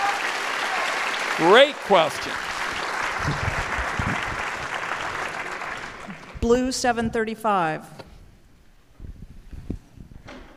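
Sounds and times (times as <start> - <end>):
crowd applauding: 0.0 - 6.4
speech: 1.4 - 2.5, 6.4 - 8.0.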